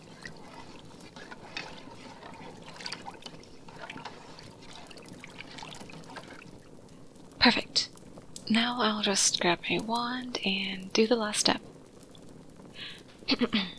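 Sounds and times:
cup of herbal tea with chamomile and honey being stirred: 0:00.0 - 0:07.1
speech: 0:07.5 - 0:07.7, 0:08.5 - 0:11.7, 0:13.3 - 0:13.7.

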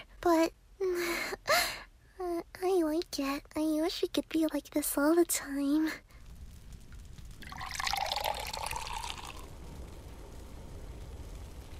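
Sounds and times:
low hum: 0:00.0 - 0:11.7
speech: 0:00.2 - 0:00.6, 0:03.2 - 0:06.1
pail of warm water poured into a bathtub: 0:07.4 - 0:09.5.

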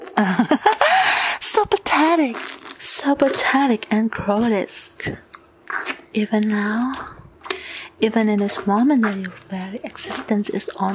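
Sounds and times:
speech: 0:00.2 - 0:00.8, 0:02.1 - 0:05.3, 0:06.1 - 0:07.2, 0:08.0 - 0:10.9
raspy breathy gasps: 0:00.8 - 0:01.4.

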